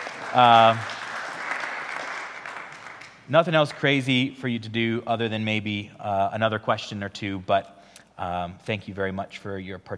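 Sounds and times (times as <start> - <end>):
audience clapping: 0.0 - 4.2
speech: 0.4 - 1.0, 3.3 - 9.9.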